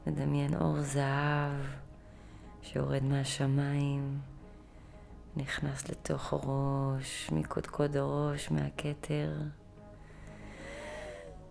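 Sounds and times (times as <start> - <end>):
speech: 0.1 - 1.9, 2.6 - 4.3, 5.3 - 9.6
slow deep breath in and out during a guided breathing meditation: 2.0 - 2.6, 4.4 - 5.3, 9.9 - 11.4.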